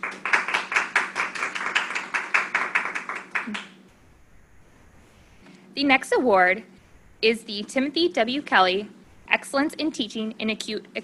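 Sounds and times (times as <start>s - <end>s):
audience applauding: 0.0s - 3.7s
speech: 5.8s - 11.0s.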